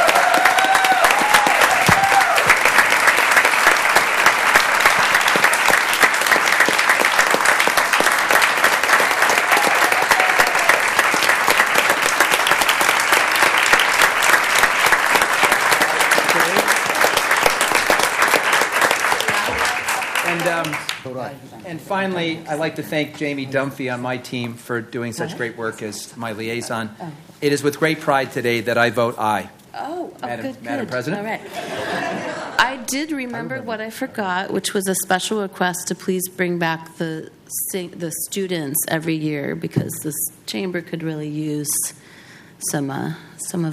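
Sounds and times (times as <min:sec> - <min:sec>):
faint voices and cheers: 0:00.0 - 0:02.6
sustained applause from a large audience: 0:00.0 - 0:21.2
speech: 0:21.9 - 0:29.6, 0:30.3 - 0:32.2, 0:32.9 - 0:43.7
laughter: 0:31.3 - 0:32.9.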